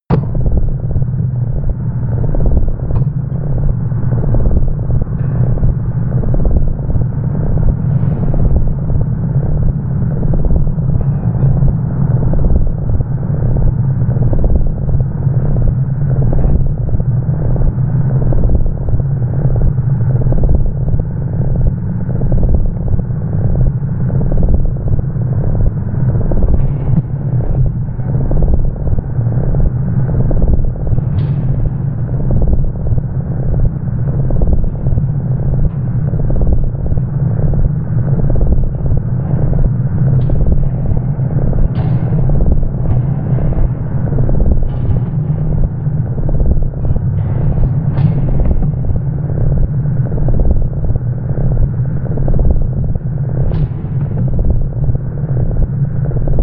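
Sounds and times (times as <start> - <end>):
low hypnotic industrial atmosphere: 0.0 - 56.4.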